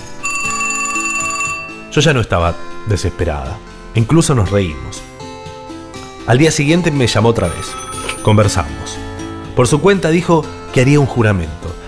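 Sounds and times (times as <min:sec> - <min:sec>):
telephone bell ringing: 0:00.0 - 0:02.0, 0:07.4 - 0:09.2
speech: 0:02.0 - 0:05.1, 0:06.3 - 0:09.0, 0:09.6 - 0:11.8.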